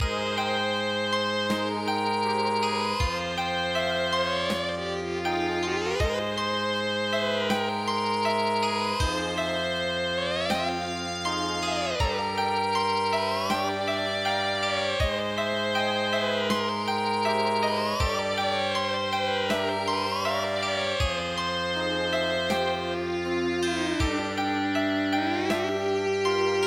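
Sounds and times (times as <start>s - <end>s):
erhu music: 0.0s - 26.6s.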